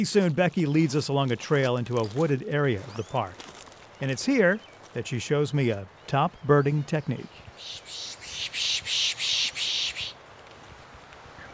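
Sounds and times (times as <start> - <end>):
speech: 0.0 - 8.1
person pishing to attract birds on a wooded park trail: 7.5 - 10.2.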